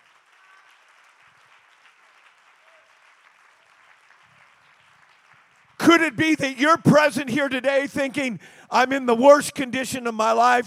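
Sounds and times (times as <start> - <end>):
congregation clapping during a church service: 0.0 - 7.8
speech: 5.8 - 10.6.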